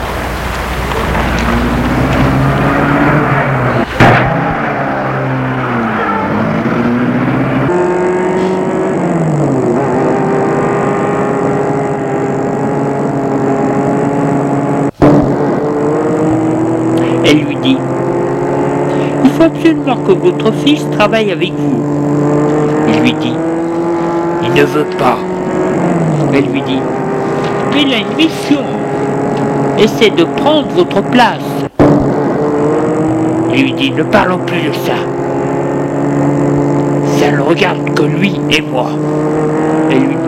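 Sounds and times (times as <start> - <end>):
car engine starting, revving and pulling away: 0.0 - 40.2
speech: 19.7 - 22.0, 23.0 - 23.5, 24.6 - 25.3, 26.3 - 27.0, 27.7 - 28.8, 29.8 - 31.6, 33.6 - 35.2, 37.3 - 40.2.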